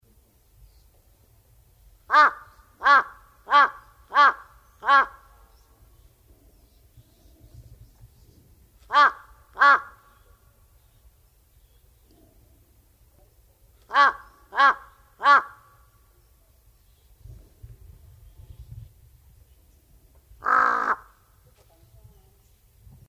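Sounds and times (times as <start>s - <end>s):
large-billed crow calling: 2.1s - 5.6s, 8.9s - 10.4s, 13.9s - 16.0s, 20.4s - 21.4s.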